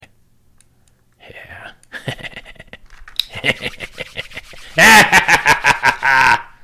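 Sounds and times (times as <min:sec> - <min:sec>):
greedy laugh: 0:01.9 - 0:06.6.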